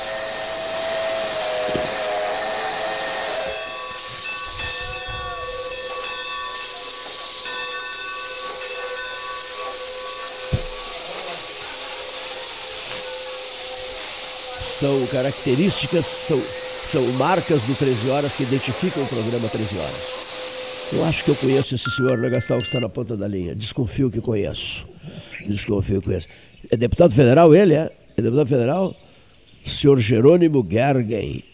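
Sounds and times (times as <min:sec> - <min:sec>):
train rumbling along the tracks: 0:00.0 - 0:21.8
long sustained steam whistle: 0:00.0 - 0:22.0
sharp knock: 0:10.5 - 0:10.8
speech: 0:14.8 - 0:20.3, 0:20.9 - 0:29.0, 0:29.8 - 0:31.5.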